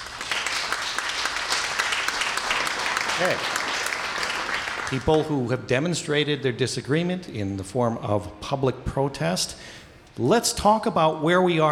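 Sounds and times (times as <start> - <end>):
audience clapping: 0.0 - 5.5
speech: 3.2 - 3.6, 4.9 - 11.6.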